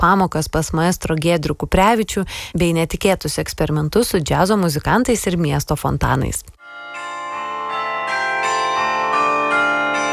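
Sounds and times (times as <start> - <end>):
speech: 0.0 - 6.6
carillon bells ringing over a city: 6.6 - 10.1.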